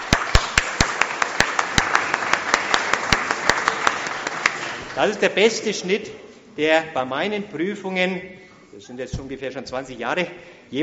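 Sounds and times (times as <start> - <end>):
group clapping for confirmation students who passed their exam: 0.0 - 5.3
speech: 5.0 - 10.8.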